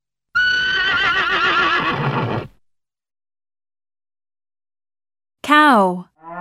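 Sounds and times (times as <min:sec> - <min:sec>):
horse neighing: 0:00.4 - 0:02.5
speech: 0:05.5 - 0:06.1.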